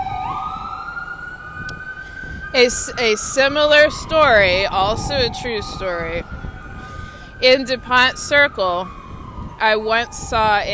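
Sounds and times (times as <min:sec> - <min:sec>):
ambulance siren wailing: 0:00.0 - 0:10.7
low traffic rumble: 0:00.0 - 0:10.7
speech: 0:02.6 - 0:06.4, 0:07.4 - 0:09.0, 0:09.6 - 0:10.7.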